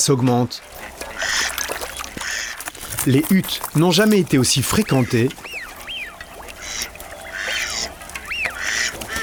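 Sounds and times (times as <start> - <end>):
speech: 0.0 - 1.1, 3.0 - 5.5
live decoy ducks quacking in Picardy: 0.6 - 9.2.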